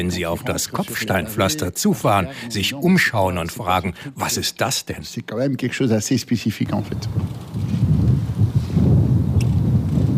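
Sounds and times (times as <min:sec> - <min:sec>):
speech: 0:00.0 - 0:07.5
strong wind buffeting on an open race track: 0:06.6 - 0:10.1.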